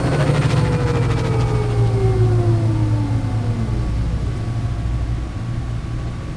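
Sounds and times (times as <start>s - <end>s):
ship: 0.0s - 6.3s.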